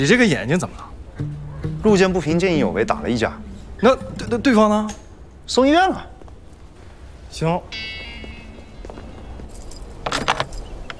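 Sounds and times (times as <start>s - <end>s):
speech: 0.0s - 6.1s, 7.3s - 8.0s
low hum: 0.0s - 10.9s
bunch of keys jangling: 9.4s - 10.9s.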